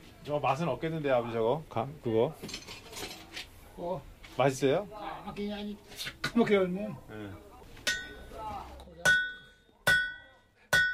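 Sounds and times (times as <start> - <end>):
faint low noise: 0.0 - 10.9
speech: 0.2 - 2.8, 3.8 - 7.5
heavy cast-iron hammer striking heated iron on an anvil at a blacksmith's forge: 7.8 - 8.2, 9.0 - 10.9.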